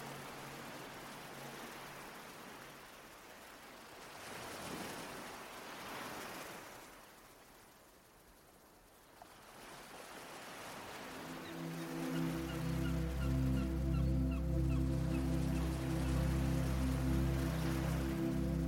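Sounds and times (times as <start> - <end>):
steady sustained low musical drone: 0.0 - 2.5, 10.9 - 18.6
soft wash of surf-like noise: 0.0 - 7.4, 9.2 - 18.6
faint distant seagull cries by the sea: 11.2 - 16.3.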